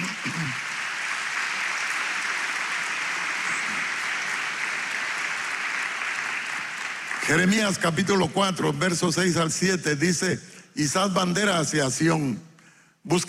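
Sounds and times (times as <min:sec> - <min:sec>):
crowd applauding: 0:00.0 - 0:08.3
speech: 0:07.3 - 0:13.2.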